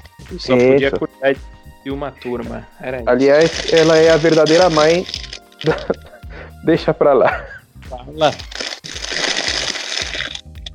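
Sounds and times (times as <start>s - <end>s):
speech: 0.3s - 6.0s, 6.6s - 8.5s
aluminum foil Easter egg wrapper crinkling: 3.2s - 6.2s, 8.2s - 10.7s
laughter: 5.6s - 6.3s, 7.2s - 7.6s.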